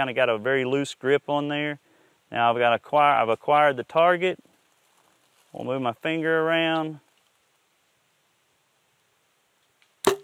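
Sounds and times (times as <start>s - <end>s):
speech: 0.0s - 4.5s, 5.5s - 7.0s
bowstring snapping as an arrow is released from a bow: 9.6s - 10.2s.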